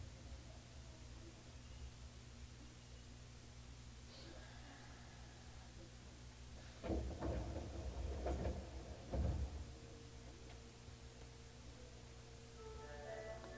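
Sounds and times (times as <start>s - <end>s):
low electrical hum of a stationary carriage: 0.0s - 13.5s
train doors sliding open at station: 6.7s - 9.8s.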